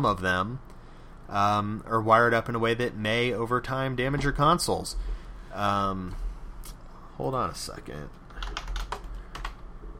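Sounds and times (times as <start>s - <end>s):
speech: 0.0s - 0.7s, 1.3s - 8.6s
quiet keystrokes on a computer keyboard typing a search: 8.3s - 9.9s.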